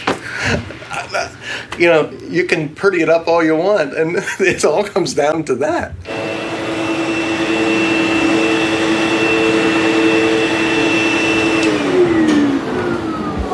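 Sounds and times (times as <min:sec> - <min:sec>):
speech: 0:00.4 - 0:06.3
vacuum cleaner motor running: 0:06.0 - 0:13.5.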